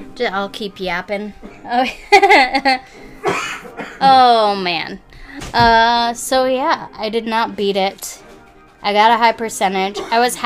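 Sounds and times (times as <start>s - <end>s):
speech: 0.2s - 8.2s, 8.8s - 10.4s
person coughing: 3.2s - 4.1s, 9.9s - 10.3s.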